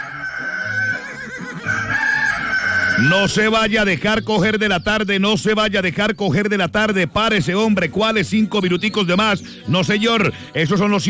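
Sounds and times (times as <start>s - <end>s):
rooster crowing: 0.0s - 3.4s
speech: 3.0s - 11.0s.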